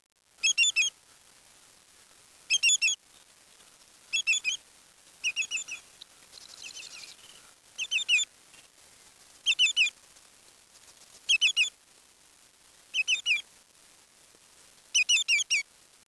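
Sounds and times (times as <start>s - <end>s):
birds chirping: 0.4s - 0.9s, 2.5s - 3.3s, 4.1s - 4.6s, 5.2s - 8.7s, 9.4s - 9.9s, 11.3s - 11.7s, 12.9s - 13.4s, 15.0s - 15.6s.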